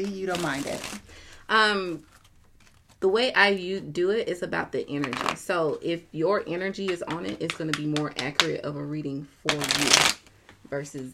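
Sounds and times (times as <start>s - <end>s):
tarot cards being shuffled: 0.0s - 1.1s, 2.0s - 3.0s, 6.8s - 8.5s, 9.5s - 10.3s
speech: 0.0s - 2.1s, 3.0s - 11.1s.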